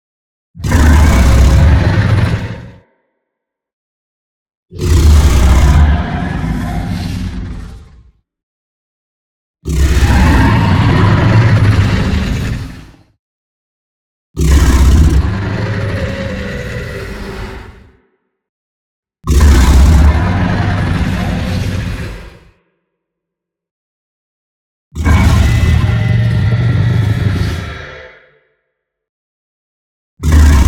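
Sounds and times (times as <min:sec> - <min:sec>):
dragon roar: 0:00.6 - 0:02.9, 0:04.7 - 0:08.2, 0:09.7 - 0:13.1, 0:14.4 - 0:18.0, 0:19.3 - 0:22.6, 0:25.0 - 0:28.5, 0:30.2 - 0:30.6.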